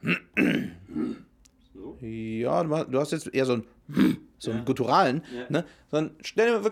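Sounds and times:
person clearing throat: 0.0 - 1.4, 3.9 - 4.3
speech: 2.5 - 6.7.

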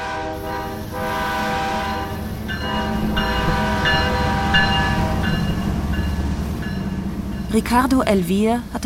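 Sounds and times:
freight train horn sounding in long harmonic blasts: 0.0 - 5.7
heavy freight train pulling away: 0.0 - 8.8
speech: 7.6 - 8.8.

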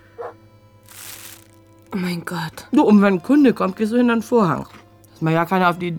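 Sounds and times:
dog barking outside: 0.2 - 0.4
speech: 1.9 - 5.9.

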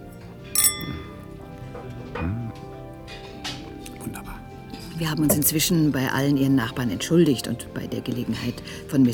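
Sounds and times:
glasses clinking in a toast: 0.1 - 1.6, 5.2 - 5.7
speech: 5.0 - 9.1.

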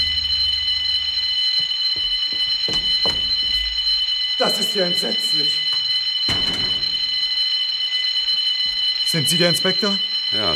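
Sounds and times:
burglar alarm ringing with shrill electronic tone: 0.0 - 10.5
thumps and knocks: 1.9 - 3.6
speech: 4.4 - 5.6, 9.2 - 10.5.

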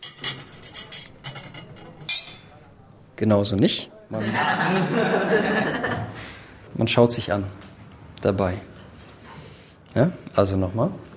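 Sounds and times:
cutlery set down on a plate during a table-manners lesson: 0.0 - 2.6
speech: 3.2 - 6.1, 6.8 - 7.6, 8.2 - 8.7, 10.0 - 11.0
laughter: 4.1 - 6.3.

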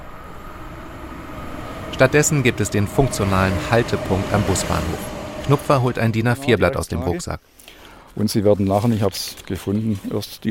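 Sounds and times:
faint high whine: 0.0 - 6.8
train rushing past a former station without stopping: 0.0 - 6.8
speech: 2.0 - 7.6, 8.2 - 10.4.

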